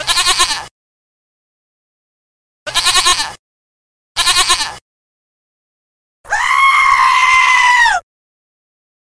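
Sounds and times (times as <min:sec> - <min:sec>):
goat bleating: 0:00.0 - 0:00.7, 0:02.7 - 0:03.4, 0:04.2 - 0:04.8, 0:06.3 - 0:08.0.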